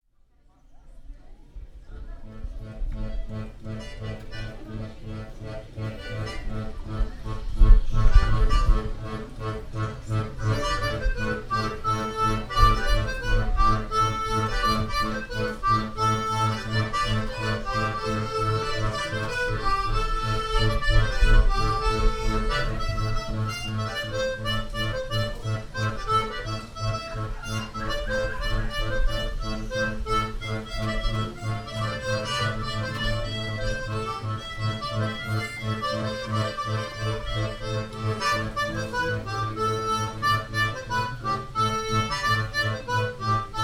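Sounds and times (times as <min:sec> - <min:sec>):
accordions playing a hanter dro: 0:01.9 - 0:43.6.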